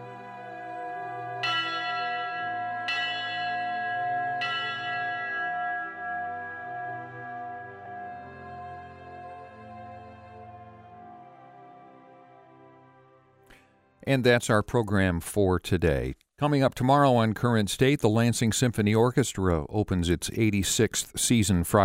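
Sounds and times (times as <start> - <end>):
fire department bell struck for final return: 1.4 - 11.0
speech: 14.1 - 21.8.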